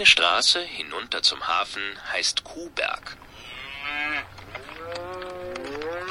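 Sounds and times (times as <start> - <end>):
speech: 0.0 - 3.5
cow mooing: 3.4 - 6.0.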